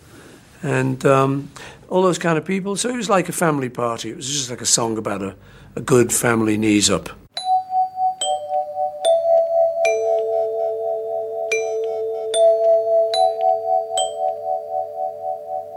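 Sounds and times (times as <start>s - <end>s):
speech: 0.6s - 7.2s
doorbell chime playing a melody: 7.4s - 15.7s.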